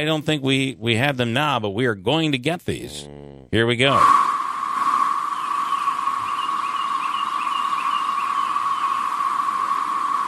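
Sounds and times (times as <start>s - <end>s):
speech: 0.0s - 4.2s
loud chorus of many cicadas: 5.1s - 10.2s.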